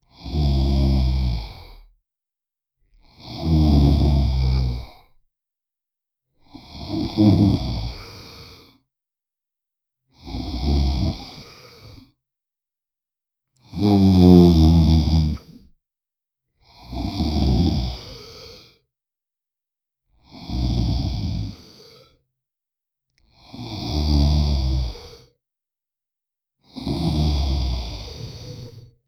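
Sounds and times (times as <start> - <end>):
male vampire snoring: 0.1 - 1.8, 3.2 - 5.0, 6.6 - 8.7, 10.2 - 12.0, 13.6 - 15.6, 16.8 - 18.4, 20.3 - 21.8, 23.4 - 25.2, 26.8 - 28.9.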